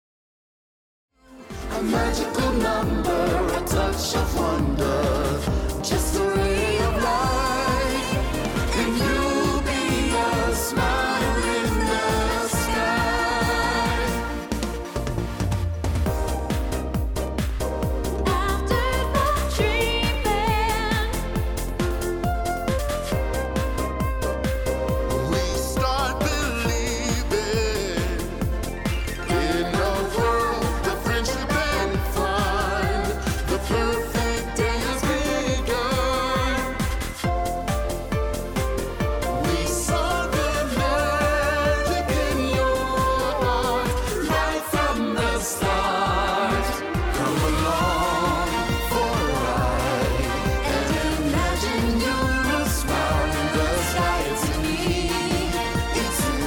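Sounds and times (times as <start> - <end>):
theme park music: 1.2 - 56.4.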